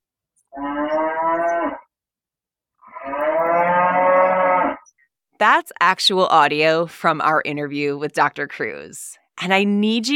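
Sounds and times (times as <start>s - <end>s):
cow mooing: 0.5s - 1.9s, 2.8s - 4.9s
speech: 5.4s - 10.1s.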